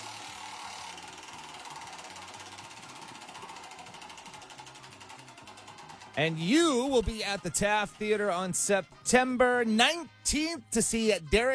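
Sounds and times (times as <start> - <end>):
prize wheel spinning, pointer ratcheting against pegs: 0.0 - 11.5
speech: 6.2 - 11.5.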